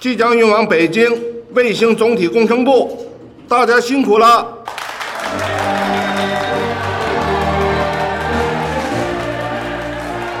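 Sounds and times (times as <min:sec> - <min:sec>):
speech: 0:00.0 - 0:04.6
applause and cheering in a satellite master control room: 0:04.6 - 0:10.3
sustained low musical tones: 0:05.3 - 0:10.3.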